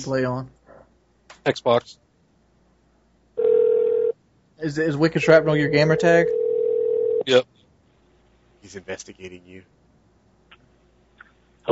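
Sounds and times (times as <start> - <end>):
speech: 0.0 - 0.6, 1.4 - 2.0, 4.6 - 6.4, 7.2 - 7.5, 8.6 - 9.8
ringback tone from an outgoing phone call: 3.4 - 4.2, 5.6 - 7.2.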